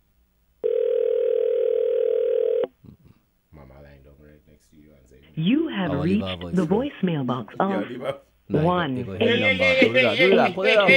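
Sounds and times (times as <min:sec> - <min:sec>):
telephone ringback tone on an unanswered call: 0:00.6 - 0:02.7
speech: 0:04.7 - 0:10.9
laughter: 0:09.0 - 0:10.9.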